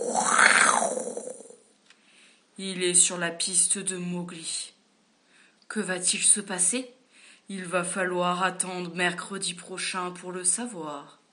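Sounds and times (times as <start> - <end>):
man-eating tiger growling: 0.0 - 1.6
speech: 2.6 - 4.8, 5.7 - 11.2.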